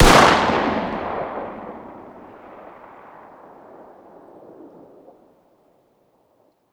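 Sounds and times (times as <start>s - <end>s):
distant 9x19 pistol shot outdoors: 0.0s - 3.9s.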